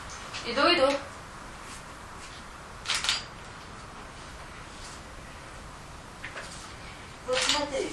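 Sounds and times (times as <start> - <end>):
speech: 0.5 - 1.1
camera being switched off with mechanical clicks and whirring: 2.8 - 3.7, 7.3 - 7.7.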